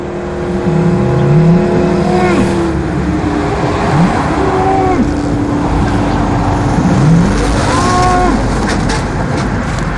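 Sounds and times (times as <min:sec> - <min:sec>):
roar of motorway traffic on open land: 0:00.0 - 0:09.9
Belgian Blue cattle mooing at a roadside picnic: 0:00.7 - 0:02.8, 0:03.9 - 0:05.3, 0:07.0 - 0:08.6.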